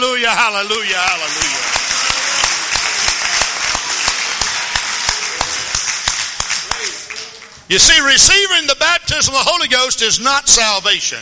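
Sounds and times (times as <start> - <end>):
speech: 0.3 - 1.8, 7.7 - 11.2
crowd clapping in rhythm: 0.7 - 8.0.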